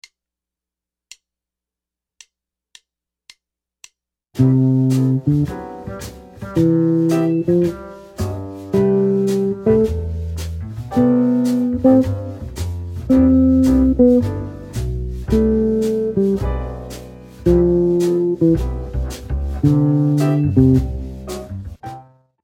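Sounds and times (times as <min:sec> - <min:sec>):
guitar playing scale rhythms: 0:04.4 - 0:22.1.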